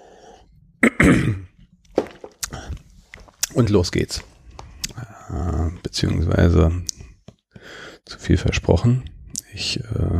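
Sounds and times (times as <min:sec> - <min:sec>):
person clearing throat: 0:00.8 - 0:01.5
person coughing: 0:00.8 - 0:01.5
speech: 0:00.9 - 0:01.5, 0:03.6 - 0:04.3, 0:05.3 - 0:07.0, 0:07.7 - 0:10.1.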